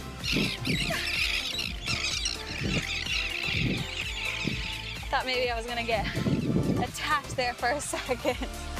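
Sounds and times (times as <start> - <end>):
many birds squawking and shrieking: 0.0 - 6.7
speech: 0.3 - 1.2, 2.6 - 3.9, 5.1 - 8.7.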